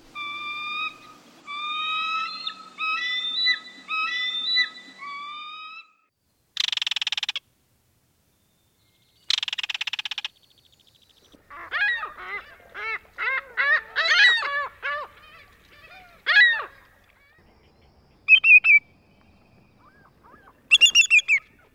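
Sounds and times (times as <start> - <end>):
bald eagle's chattering notes: 0.0 - 5.6, 6.6 - 7.4, 9.3 - 10.4, 11.4 - 21.7
greater yellowlegs' short clear piercing whistles: 0.0 - 6.0, 17.7 - 21.7
ring-billed gull's squealing cries: 0.0 - 6.1, 11.4 - 17.4, 19.6 - 21.7.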